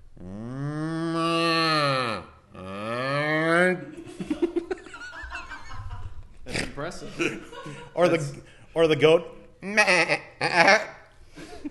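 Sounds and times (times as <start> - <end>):
person imitating a cow moo, once in reverse while inhaling: 0.1 - 3.7
laughter: 3.8 - 8.6
speech: 6.9 - 9.4.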